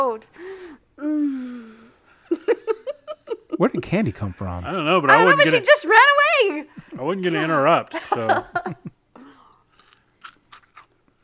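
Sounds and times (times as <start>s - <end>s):
speech: 0.0s - 1.6s, 3.5s - 9.0s
laughter: 2.3s - 4.2s, 6.8s - 9.0s
hard candy ball crunching: 9.6s - 11.2s.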